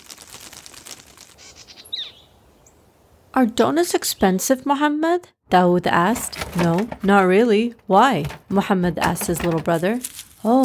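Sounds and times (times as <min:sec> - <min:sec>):
bird wings fluttering: 0:00.0 - 0:01.8
speech: 0:03.4 - 0:10.6.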